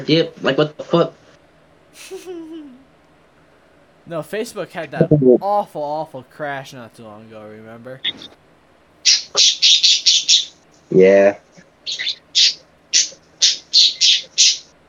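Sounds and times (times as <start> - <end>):
speech: 0.0 - 1.2, 2.0 - 2.8, 4.1 - 8.4, 9.3 - 9.9, 10.9 - 12.2
laughter: 2.0 - 2.8
harsh nasal squawking quacking bird calls: 9.1 - 10.5, 11.9 - 14.6.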